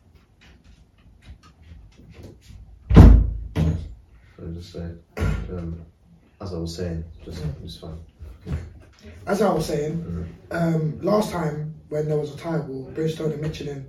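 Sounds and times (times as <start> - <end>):
door being shut with a loud low thud: 2.9 - 3.9
speech: 4.4 - 13.8.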